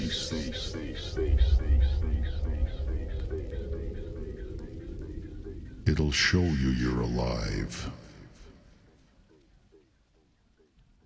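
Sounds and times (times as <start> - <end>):
deep throbbing fat bass: 0.0 - 8.4
speech: 5.9 - 8.0.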